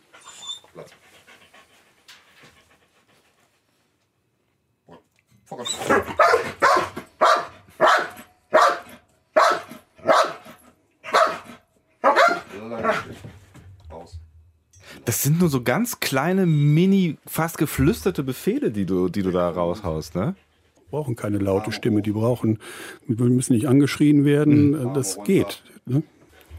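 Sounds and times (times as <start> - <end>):
dog barking during basic search training exercise: 5.8 - 13.2
speech: 15.1 - 26.1.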